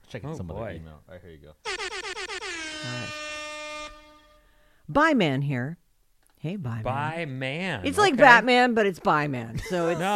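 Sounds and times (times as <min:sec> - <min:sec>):
speech: 0:00.1 - 0:01.8, 0:02.8 - 0:03.3, 0:04.9 - 0:05.8, 0:06.4 - 0:10.1
air horn sound effect blasts: 0:01.6 - 0:04.8.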